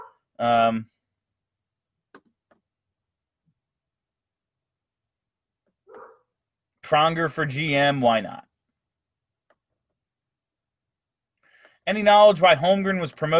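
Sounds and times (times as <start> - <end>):
dog barking at trash truck: 0.0 - 0.2, 5.9 - 6.3
speech: 0.4 - 0.9, 6.9 - 8.5, 11.9 - 13.3.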